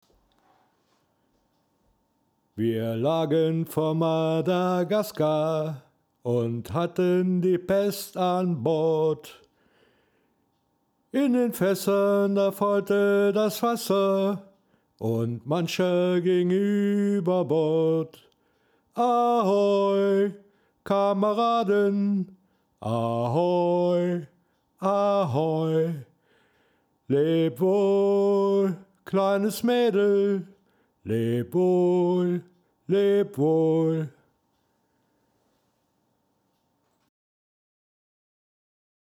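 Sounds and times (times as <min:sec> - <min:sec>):
person singing: 0:02.6 - 0:09.4, 0:11.2 - 0:18.3, 0:19.0 - 0:26.1, 0:27.1 - 0:34.2.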